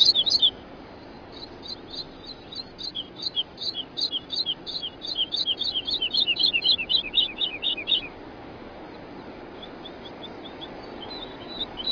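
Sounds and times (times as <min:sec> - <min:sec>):
woodlark singing: 0:00.0 - 0:08.2, 0:08.9 - 0:11.9.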